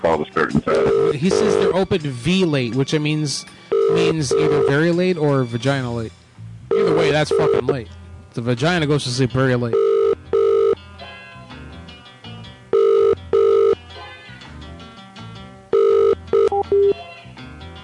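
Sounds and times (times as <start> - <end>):
speech: 0.0 - 6.2, 6.8 - 9.9
telephone ringing with an incoming call: 0.7 - 1.8, 3.7 - 4.8, 6.7 - 7.7, 9.7 - 10.8, 12.7 - 13.8, 15.7 - 17.0.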